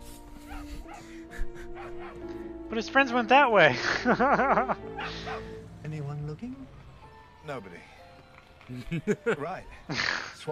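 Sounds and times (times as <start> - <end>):
dog barking: 0.4 - 1.1, 1.8 - 2.2, 4.9 - 5.6
laughter: 0.5 - 2.2, 3.8 - 5.5, 8.7 - 10.0
speech: 1.0 - 5.2, 7.5 - 8.0, 8.7 - 10.5.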